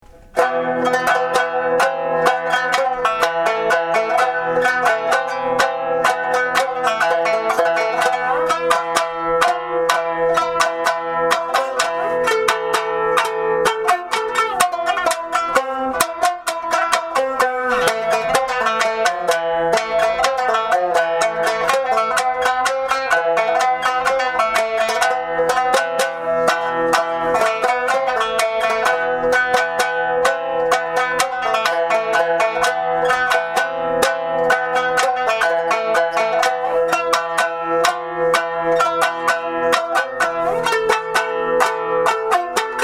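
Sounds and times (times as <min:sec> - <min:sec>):
shamisen: 0:00.0 - 0:42.8.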